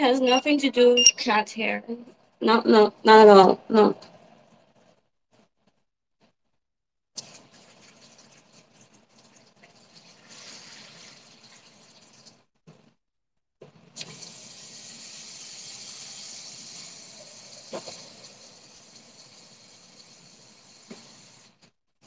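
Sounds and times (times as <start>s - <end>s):
speech: 0.0s - 4.1s
water running from a tap as it is refilled: 7.2s - 12.5s, 14.0s - 21.7s.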